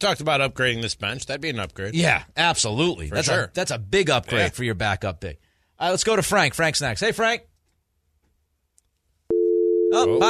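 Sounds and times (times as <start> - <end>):
speech: 0.0 - 7.5, 9.9 - 10.2
telephone dial tone on the line: 9.3 - 10.2.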